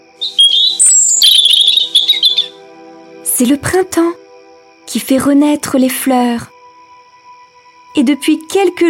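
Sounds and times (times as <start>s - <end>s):
small birds singing: 0.0s - 3.2s
speech: 3.4s - 4.2s, 4.9s - 6.5s, 8.0s - 8.8s.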